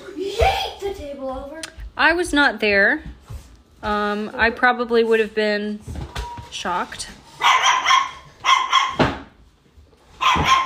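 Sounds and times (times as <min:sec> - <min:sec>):
speech: 0:01.2 - 0:03.1, 0:03.8 - 0:05.9, 0:06.5 - 0:07.6
dog barking: 0:07.4 - 0:09.2, 0:10.2 - 0:10.6.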